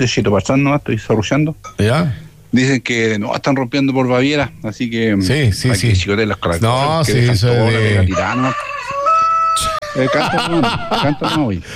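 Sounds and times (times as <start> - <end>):
speech: 0.0 - 8.7, 9.6 - 11.7
rooster crowing: 7.7 - 10.5
laughter: 9.7 - 11.7.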